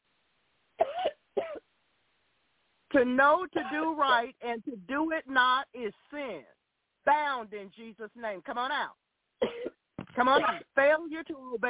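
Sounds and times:
harsh coughs: 0.8s - 1.6s, 9.4s - 9.8s
speech: 3.0s - 9.6s, 10.2s - 11.6s.

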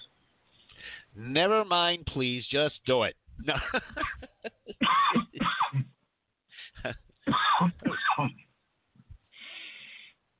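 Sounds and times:
speech: 1.1s - 5.9s, 6.8s - 8.4s
laughter: 3.4s - 4.8s
person coughing in harsh bouts: 4.8s - 6.0s, 7.3s - 8.5s.

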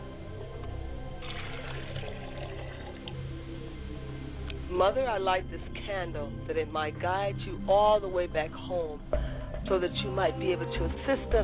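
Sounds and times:
water pouring into a glass: 1.2s - 3.3s
speech: 4.7s - 11.4s.

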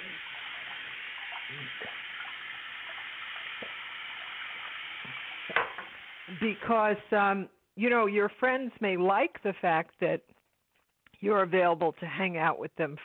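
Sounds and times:
water running from a tap into a glass: 0.0s - 6.7s
speech: 6.4s - 10.3s, 11.2s - 13.0s.

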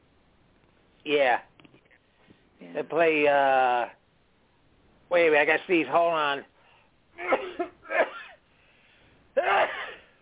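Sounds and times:
speech: 1.0s - 1.5s, 2.6s - 4.0s, 5.1s - 6.5s
person sneezing: 7.2s - 8.4s, 9.4s - 10.2s.

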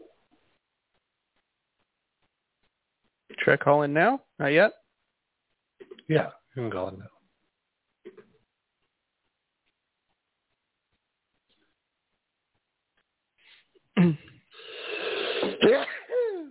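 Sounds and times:
speech: 3.4s - 4.8s, 6.1s - 7.2s
loud sneeze with drawn-out voiced exhale: 14.0s - 16.4s.

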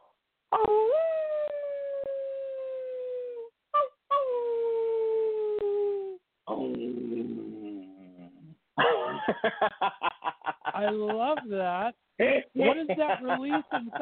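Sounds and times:
person imitating wolf howls: 0.5s - 8.4s
person growling: 6.5s - 9.2s
speech: 8.8s - 10.1s, 10.8s - 13.9s
laughter: 8.8s - 11.5s, 12.6s - 13.9s.

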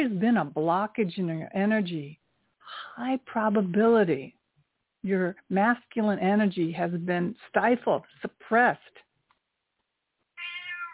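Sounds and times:
speech: 0.0s - 2.2s, 3.0s - 4.4s, 5.0s - 9.0s
male cat meowing: 10.4s - 10.9s.

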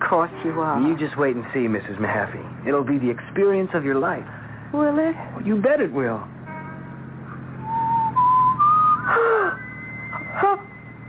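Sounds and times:
steady low hum: 0.0s - 11.0s
speech: 0.1s - 6.3s
person whistling a short tune of held notes: 7.6s - 11.0s.

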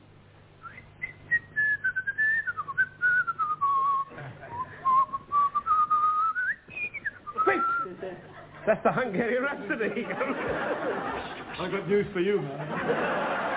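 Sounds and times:
person whistling a wandering tune: 0.6s - 7.9s
laughter: 4.1s - 5.0s, 7.4s - 13.5s
speech: 7.9s - 13.5s.

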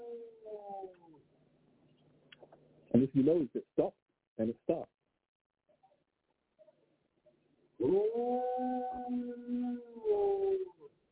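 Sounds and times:
dog howling: 0.0s - 1.1s, 7.8s - 10.9s
speech: 3.0s - 5.0s, 7.9s - 9.2s.

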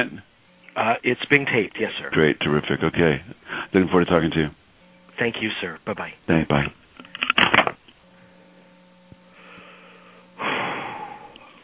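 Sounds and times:
speech: 0.0s - 0.2s, 0.8s - 4.6s, 5.2s - 6.8s
low electrical hum: 0.0s - 11.6s
person breathing into a microphone: 9.3s - 11.6s.

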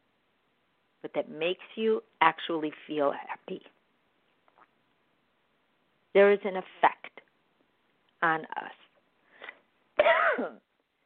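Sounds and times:
speech: 1.0s - 3.8s, 6.1s - 7.2s, 8.2s - 8.8s, 10.4s - 10.7s
person coughing harshly: 10.0s - 10.6s.

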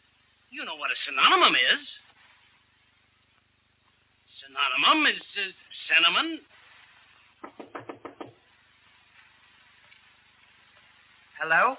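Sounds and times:
faint hiss: 0.0s - 11.7s
speech: 0.5s - 2.0s, 4.5s - 6.5s, 11.4s - 11.7s
knocking: 7.4s - 8.5s.

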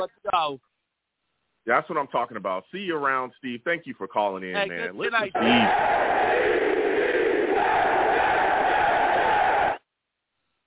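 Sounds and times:
speech: 0.0s - 0.7s, 1.6s - 6.6s
studio audience clapping and cheering with whoops: 5.4s - 9.8s.

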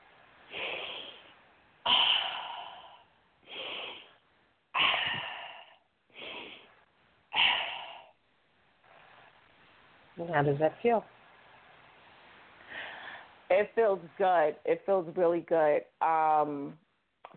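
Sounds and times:
deep breathing: 0.5s - 4.2s, 4.8s - 8.2s, 12.6s - 13.5s
speech: 10.2s - 11.2s, 13.6s - 16.8s.

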